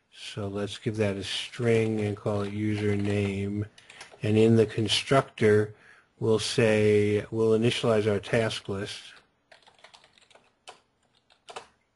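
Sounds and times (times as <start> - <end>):
speech: 0.3 - 9.2
computer keyboard typing: 1.7 - 4.3, 9.5 - 11.8.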